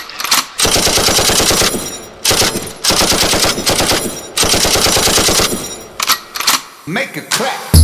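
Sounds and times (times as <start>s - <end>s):
gunfire in rapid automatic bursts: 0.4s - 5.8s
speech: 6.9s - 7.7s.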